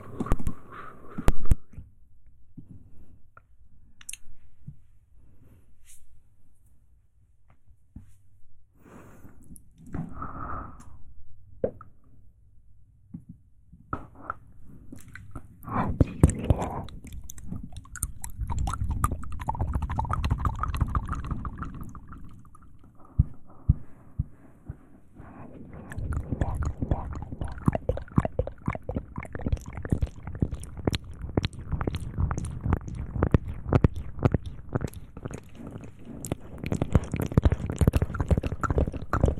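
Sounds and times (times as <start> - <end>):
wet mouth clicks, smacks, chewing and slurping: 0.0 - 1.5, 15.0 - 24.3, 25.2 - 39.3.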